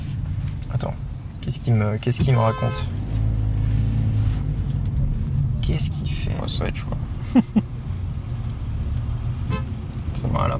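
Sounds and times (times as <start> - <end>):
low rumble of a car engine on a road in Mauritius: 0.0 - 10.5
road noise on a road in Mauritius: 0.0 - 10.5
speech: 0.8 - 3.1, 5.6 - 7.7, 10.2 - 10.5
car horn toot from a driver behind: 2.2 - 3.0, 9.5 - 9.8
laughter: 7.2 - 7.7.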